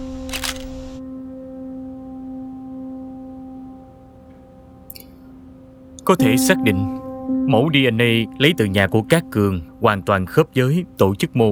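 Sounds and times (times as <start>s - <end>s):
camera shutter firing to photograph blood evidence at a crime scene: 0.2s - 1.0s
speech: 6.1s - 11.5s.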